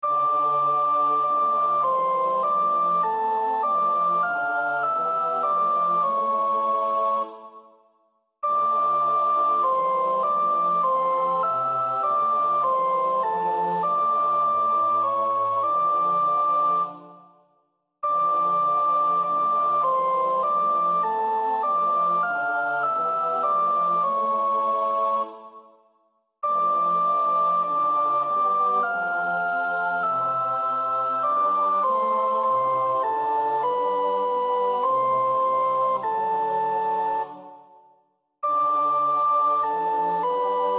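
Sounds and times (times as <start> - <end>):
soprano singing a psalm: 0.0 - 17.2, 18.0 - 40.7.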